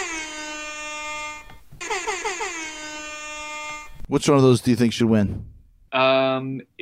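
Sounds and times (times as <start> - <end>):
air horn blasts: 0.0 - 4.2
speech: 4.1 - 6.8.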